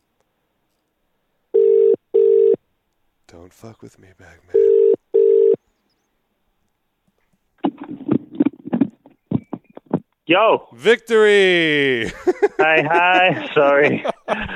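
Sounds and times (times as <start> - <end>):
outgoing phone call ringback tone: 1.6 - 2.6, 4.5 - 5.6
speech: 3.3 - 4.8, 10.3 - 14.5
laughter: 11.8 - 14.5.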